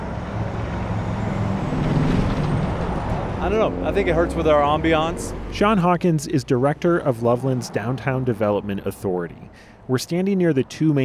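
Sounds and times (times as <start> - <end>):
traffic passing on wide fast one-way downtown streets: 0.0 - 11.0
speech: 3.5 - 11.0.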